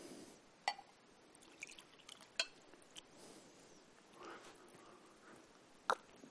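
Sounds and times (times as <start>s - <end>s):
small liquid sounds: 1.3s - 3.2s
glass clinking: 2.4s - 2.6s.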